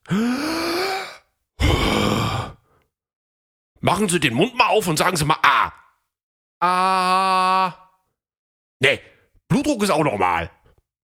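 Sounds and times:
patient breathing deeply for a doctor's stethoscope check: 0.0 - 3.0
speech: 3.8 - 5.8, 6.6 - 7.8, 8.8 - 10.6.

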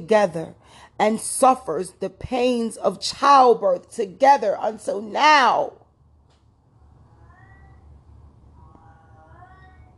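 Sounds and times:
speech: 0.0 - 5.8
steady low hum: 0.0 - 9.9
pet cat meowing: 7.2 - 7.8, 8.7 - 9.9.

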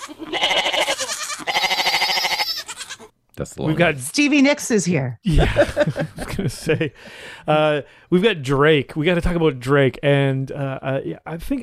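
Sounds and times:
goat bleating: 0.0 - 3.1
speech: 3.4 - 11.6
laughter: 5.2 - 7.8.

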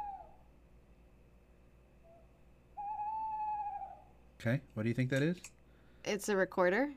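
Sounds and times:
owl hooting: 0.0 - 0.5, 2.0 - 4.2
faint hum: 0.0 - 6.9
speech: 4.4 - 6.9.

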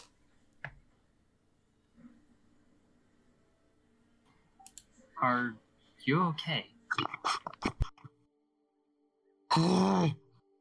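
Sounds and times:
speech: 5.2 - 7.4, 9.6 - 10.2
voice imitating pained gasping: 9.5 - 10.4.

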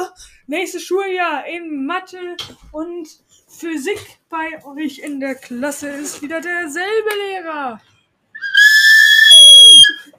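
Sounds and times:
speech: 0.5 - 7.9
cheap plastic toy whistle blast: 8.4 - 10.1.

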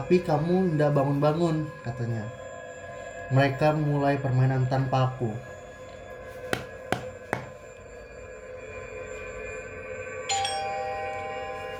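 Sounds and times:
speech: 0.0 - 2.4, 3.3 - 5.5
sharp knocking on a door: 6.6 - 7.6
sustained bell-like ringing tone: 7.5 - 11.7.

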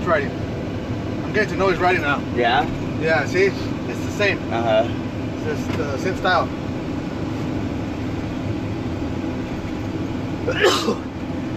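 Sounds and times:
low engine-like rumble: 0.0 - 11.5
speech: 0.1 - 6.6, 10.4 - 11.1
sneeze: 10.5 - 11.0.

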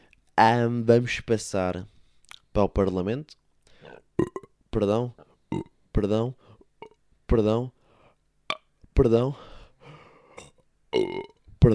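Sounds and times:
speech: 0.4 - 1.9, 2.6 - 6.4, 7.3 - 7.8, 9.0 - 9.5, 11.0 - 11.7
person burping: 3.9 - 4.6, 5.5 - 5.8, 6.8 - 7.0, 10.3 - 11.5.

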